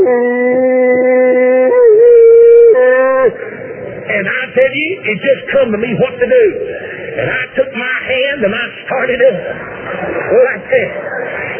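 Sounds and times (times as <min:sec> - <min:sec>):
human voice imitating plot hounds howling: 0:00.0 - 0:03.4
speech: 0:04.6 - 0:11.5.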